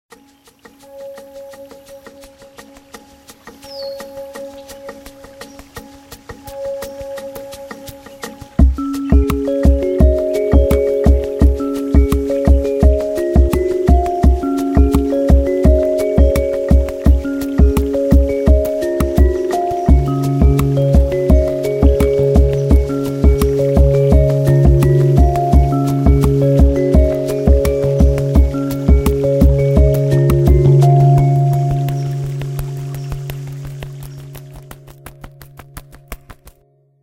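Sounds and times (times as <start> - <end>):
phone ringtone melody: 8.6 - 32.8.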